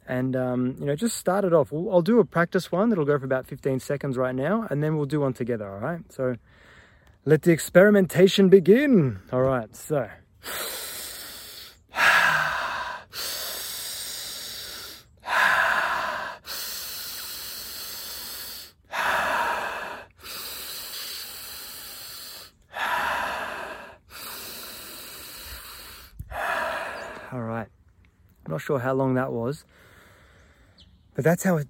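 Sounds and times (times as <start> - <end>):
speech: 0.1 - 10.8, 28.6 - 29.9, 31.2 - 31.6
Wim Hof style connected breathing in through nose and out through mouth: 6.4 - 7.2, 10.4 - 27.4, 29.6 - 30.8.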